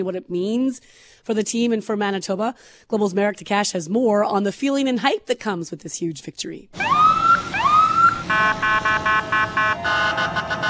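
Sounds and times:
speech: 0.0s - 7.2s
emergency vehicle sirens: 6.7s - 10.6s
steady horn-like tone: 8.2s - 10.6s.

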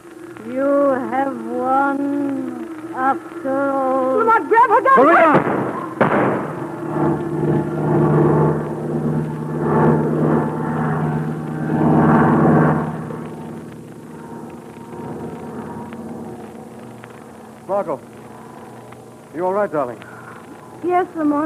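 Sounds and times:
propeller airplane engine roaring in a dive: 0.0s - 21.4s
speech: 3.0s - 5.7s, 19.4s - 20.1s, 20.8s - 21.4s.

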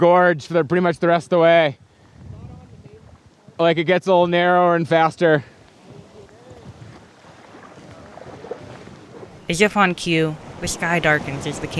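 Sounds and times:
speech: 0.0s - 1.9s, 3.6s - 5.5s, 9.5s - 11.7s
wind buffeting the microphone: 1.8s - 3.6s, 5.8s - 11.7s
river water rushing past a boat: 7.3s - 11.7s.

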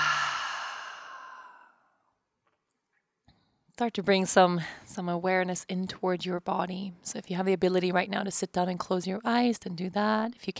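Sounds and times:
person exhaling through the open mouth during a deep-breathing exercise: 0.0s - 1.8s
speech: 3.8s - 10.5s.

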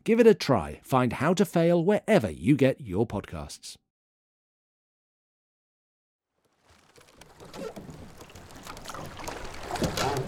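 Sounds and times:
speech: 0.0s - 3.8s
ropes creaking and squealing against moored boats: 6.6s - 10.2s
steady wash of sea water: 6.6s - 10.2s.

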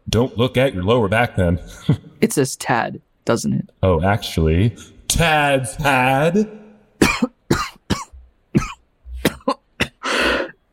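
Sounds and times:
speech: 0.2s - 6.6s
harsh hacking coughs: 7.0s - 10.5s.

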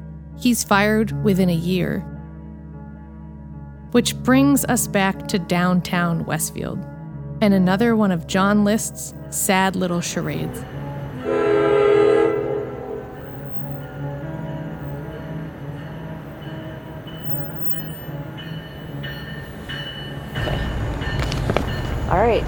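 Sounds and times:
speech: 0.4s - 2.1s, 3.9s - 11.4s
train rumbling past at a train station: 8.4s - 22.4s
faint metallic whines of a passing train: 10.3s - 22.1s
train horn at a train station: 11.1s - 14.0s.

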